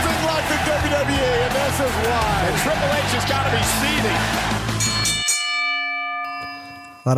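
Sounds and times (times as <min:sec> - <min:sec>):
loud roaring crowd: 0:00.0 - 0:05.2
bell clanging: 0:04.7 - 0:07.1
single metallic ring: 0:04.8 - 0:07.1.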